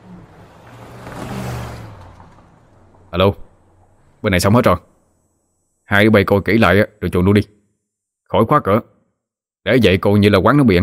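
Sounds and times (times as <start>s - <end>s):
vehicle engine speeding away: 0.0s - 4.3s
speech: 3.1s - 3.4s, 4.2s - 4.9s, 5.9s - 7.6s, 8.3s - 8.9s, 9.6s - 10.8s.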